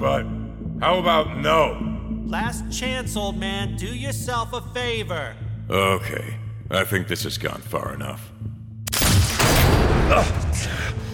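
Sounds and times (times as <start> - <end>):
speech: 0.0 - 8.4, 10.1 - 11.1
loud gunfire with bullets striking a person in a confrontation: 8.9 - 10.4.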